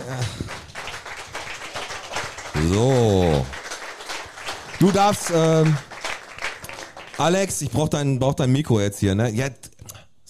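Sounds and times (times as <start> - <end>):
small group applauding: 0.0 - 8.0
speech: 2.6 - 3.6, 4.8 - 5.9, 7.2 - 9.6.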